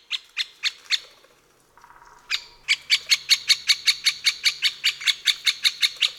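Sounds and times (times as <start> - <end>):
alarmed woodpecker call series: 1.8 - 6.1.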